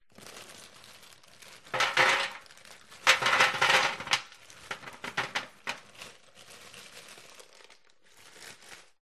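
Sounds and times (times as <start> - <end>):
frozen chips on a metal tin baking tray in a household kitchen: 0.0 - 9.0.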